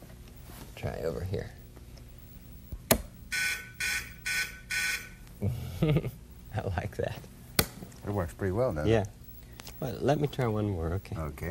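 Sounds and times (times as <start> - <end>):
speech: 0.8 - 1.6, 5.4 - 7.3, 8.0 - 9.2, 9.8 - 11.4
electric buzzer on a plugged-in machine: 3.3 - 5.2.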